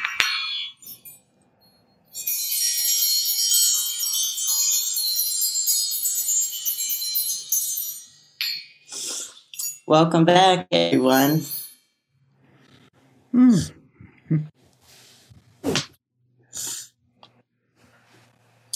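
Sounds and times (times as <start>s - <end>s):
small fairy bells chiming: 0.2s - 9.9s, 11.1s - 12.0s
speech: 9.9s - 11.6s, 14.3s - 14.5s.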